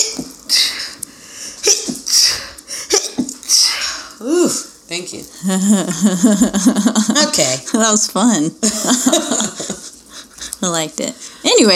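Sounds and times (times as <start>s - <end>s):
breathy intakes: 0.5s - 4.8s
sneezing: 1.6s - 4.0s
speech: 5.0s - 9.8s, 10.6s - 11.7s
laughter: 5.4s - 7.6s, 8.6s - 10.5s.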